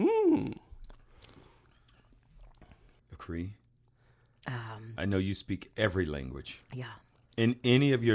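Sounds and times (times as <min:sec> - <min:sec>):
person murmuring: 0:00.0 - 0:00.7
person sipping a strong drink: 0:00.4 - 0:03.1
speech: 0:03.2 - 0:03.6, 0:04.4 - 0:08.1.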